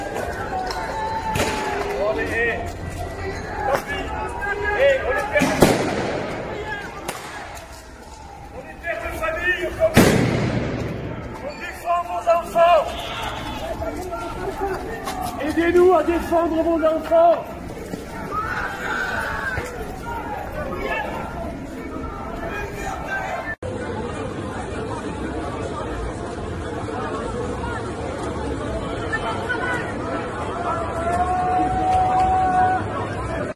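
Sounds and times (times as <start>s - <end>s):
French protesters chattering in a busy Paris street: 0.0s - 33.5s
sharp bangs: 5.2s - 7.7s, 9.8s - 11.4s.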